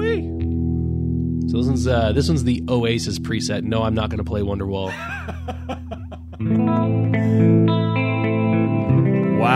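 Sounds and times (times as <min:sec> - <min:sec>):
strummed hits on an electric guitar through a guitar amp: 0:00.2 - 0:01.7, 0:06.3 - 0:09.5
speech: 0:01.6 - 0:05.8, 0:06.4 - 0:07.6
laughter: 0:04.9 - 0:06.6.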